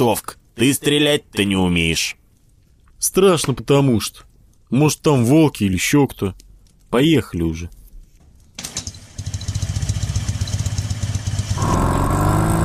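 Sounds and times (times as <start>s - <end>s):
speech: 0.0s - 2.2s, 3.0s - 7.8s
Ural motorcycle engine starting and rattling: 8.6s - 12.5s.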